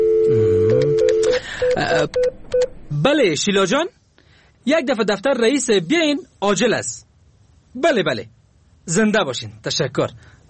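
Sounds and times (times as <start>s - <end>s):
telephone keypad beeps dialing a number: 0.0s - 2.7s
speech: 1.8s - 4.0s, 4.6s - 7.1s, 7.7s - 10.4s.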